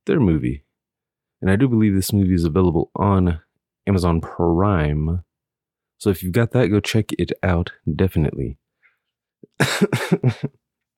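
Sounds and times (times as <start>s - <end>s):
speech: 0.0s - 0.6s, 1.4s - 5.3s, 6.0s - 8.6s, 9.6s - 10.6s
rapid harsh rasping coughs: 9.5s - 10.6s.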